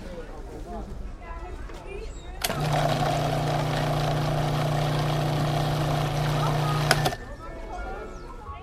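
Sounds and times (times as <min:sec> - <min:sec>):
faint murmur: 0:00.0 - 0:08.6
blender with counter-rotating blades blending pear and other fruit into a smoothie: 0:02.4 - 0:07.2.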